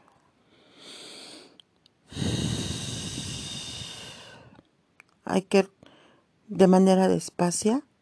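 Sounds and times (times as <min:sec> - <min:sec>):
slow breathing in and out: 0:00.0 - 0:04.7, 0:05.8 - 0:06.4
speech: 0:05.3 - 0:05.8, 0:06.5 - 0:07.9.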